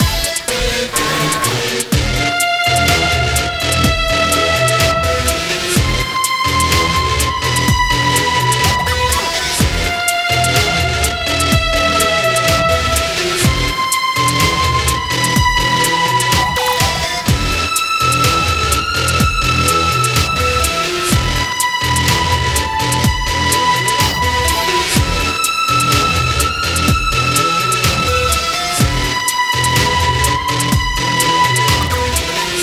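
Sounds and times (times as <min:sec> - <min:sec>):
background music: 0:00.0 - 0:32.6.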